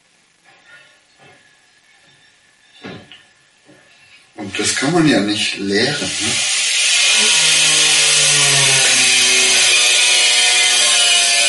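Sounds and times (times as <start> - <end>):
speech: 4.4 - 6.6
angle grinder running: 5.8 - 11.4.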